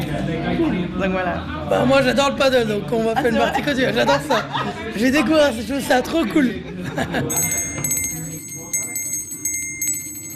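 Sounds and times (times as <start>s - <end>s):
speech: 0.6s - 7.6s
laughter: 3.2s - 5.3s, 6.4s - 7.7s
small hand bell rung to announce the next round: 7.3s - 10.3s.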